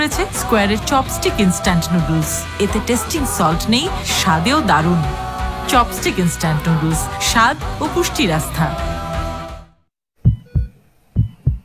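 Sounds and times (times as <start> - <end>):
speech: 0.0 - 9.0
baby's heartbeat thumping in lub-dub pairs: 10.2 - 11.6.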